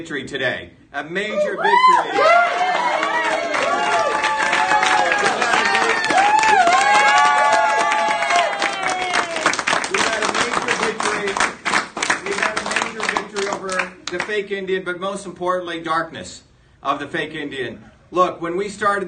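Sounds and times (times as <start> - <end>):
speech: 0.0 - 3.1, 14.3 - 19.0
excited shouting voices of a crowd: 1.4 - 9.4
crowd applauding with dense clapping: 2.2 - 14.4.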